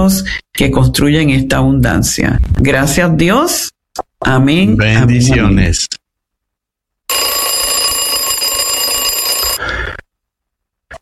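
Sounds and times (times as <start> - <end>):
speech: 0.0 - 6.0
alarm clock ringing with a buzzing electronic tone: 7.1 - 9.6.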